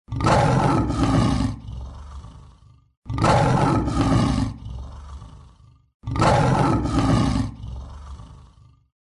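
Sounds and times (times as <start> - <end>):
tigers roaring: 0.1 - 8.9.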